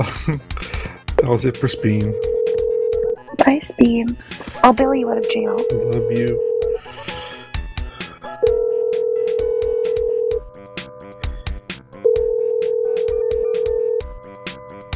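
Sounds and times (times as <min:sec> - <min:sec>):
laughter: 0:00.0 - 0:02.2, 0:05.8 - 0:06.4
speech: 0:00.0 - 0:02.3, 0:03.5 - 0:06.5
telephone ringing with an incoming call: 0:01.6 - 0:03.2, 0:05.0 - 0:06.9, 0:08.4 - 0:10.4, 0:12.1 - 0:14.0.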